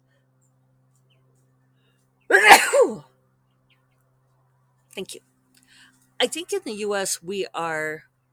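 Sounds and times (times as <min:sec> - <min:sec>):
person sneezing: 0:02.3 - 0:03.0
speech: 0:05.0 - 0:08.1.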